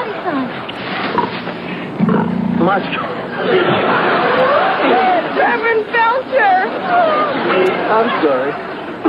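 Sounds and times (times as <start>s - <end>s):
chatter: 0.0s - 9.0s
pig grunting and snorting: 1.1s - 2.7s
speech: 2.6s - 4.2s, 4.8s - 8.7s
people laughing lightly: 3.2s - 9.0s.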